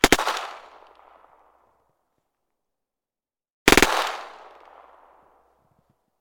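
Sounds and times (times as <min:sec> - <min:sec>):
PPSh gun: 0:00.0 - 0:01.5, 0:03.7 - 0:05.6.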